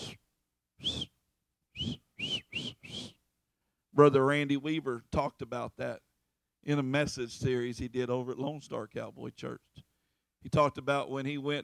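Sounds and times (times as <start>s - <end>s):
person whistling a shrill herding call for sheep: 0.0s - 0.2s, 0.8s - 1.2s, 1.8s - 3.2s
speech: 4.0s - 11.6s.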